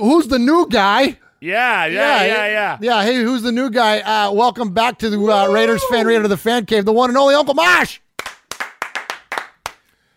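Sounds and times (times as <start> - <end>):
speech: 0.0 - 8.0
single person clapping: 8.2 - 10.0.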